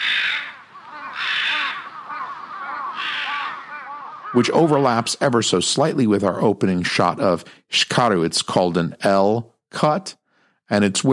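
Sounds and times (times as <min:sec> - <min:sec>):
crows cawing: 0:00.0 - 0:05.0
speech: 0:04.3 - 0:11.1.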